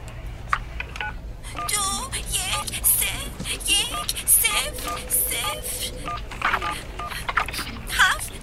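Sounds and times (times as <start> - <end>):
voices talking: 1.4 - 8.4
touch-tone beeps of a telephone number being dialed: 1.6 - 1.9, 3.7 - 7.2.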